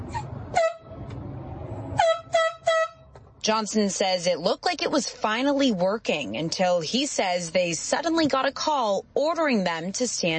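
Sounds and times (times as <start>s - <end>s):
low rumbling: 0.0s - 3.6s
air horn blasts: 0.5s - 1.0s, 1.9s - 3.1s
speech: 3.4s - 10.3s.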